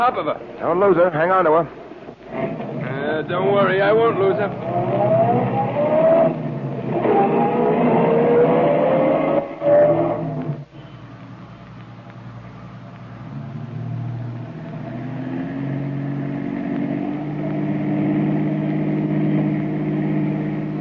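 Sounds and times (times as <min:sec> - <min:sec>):
speech: 0:00.0 - 0:02.5, 0:03.1 - 0:05.8
car engines in heavy city traffic rumbling and revving: 0:00.0 - 0:20.8
car accelerating with a rising whine: 0:02.3 - 0:10.6, 0:13.2 - 0:20.8.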